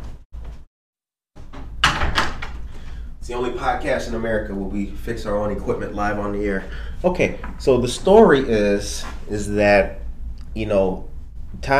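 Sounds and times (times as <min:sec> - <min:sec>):
door rattling: 0:01.4 - 0:02.8
door being closed: 0:01.4 - 0:03.0
speech: 0:03.3 - 0:10.0, 0:10.6 - 0:11.7
shuffling: 0:08.5 - 0:09.5.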